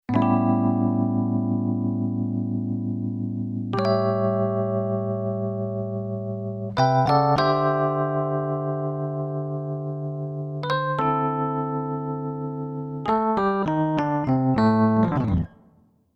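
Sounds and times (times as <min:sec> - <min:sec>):
blues piano on keyboard: 0:00.1 - 0:15.8.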